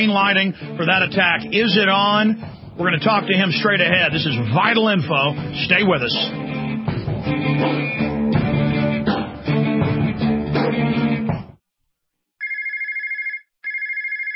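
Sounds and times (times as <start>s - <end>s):
speech: 0.0s - 6.5s
music: 0.0s - 11.6s
telephone with bright trilling electronic ring: 12.4s - 14.3s.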